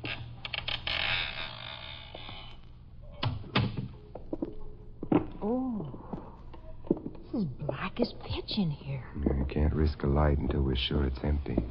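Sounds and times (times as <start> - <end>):
partially open door creaking slowly open: 0.0 - 3.9
speech: 5.4 - 6.0, 7.4 - 11.7.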